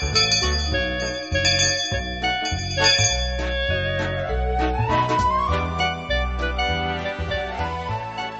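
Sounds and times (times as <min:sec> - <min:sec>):
bright chiming bell-like jingle signalling class start: 0:00.0 - 0:05.0
steady pulsing bass beat: 0:00.0 - 0:07.5.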